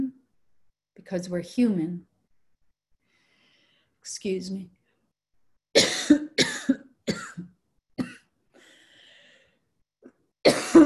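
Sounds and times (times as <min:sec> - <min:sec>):
speech: 0:01.0 - 0:02.1, 0:04.0 - 0:04.8
person coughing: 0:05.8 - 0:08.3, 0:10.4 - 0:10.8
wheezy breath: 0:08.5 - 0:09.7.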